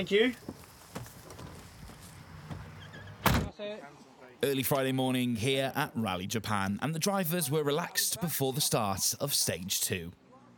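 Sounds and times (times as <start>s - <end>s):
speech: 0.0s - 0.5s, 3.6s - 10.2s
doors slamming shut: 2.4s - 3.5s.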